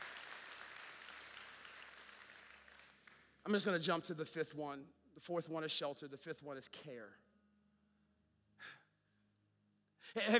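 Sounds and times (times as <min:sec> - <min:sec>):
audience applause: 0:00.0 - 0:03.3
speech: 0:03.4 - 0:07.2, 0:10.1 - 0:10.3.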